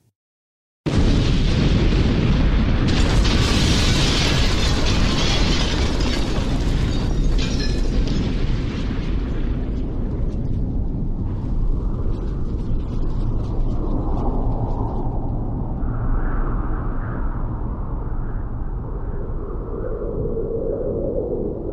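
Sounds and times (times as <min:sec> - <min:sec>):
massive explosion: 0:00.9 - 0:13.7
thick roaring rumble: 0:00.9 - 0:21.7.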